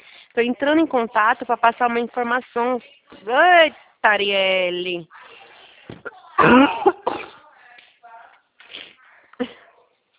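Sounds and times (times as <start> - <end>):
speech: 0.4 - 5.2, 6.4 - 7.0
person coughing: 6.4 - 7.4.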